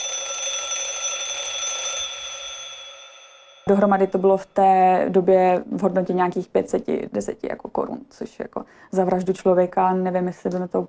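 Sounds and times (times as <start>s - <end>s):
alarm clock ringing with a metallic trill: 0.0s - 4.6s
speech: 3.7s - 10.8s.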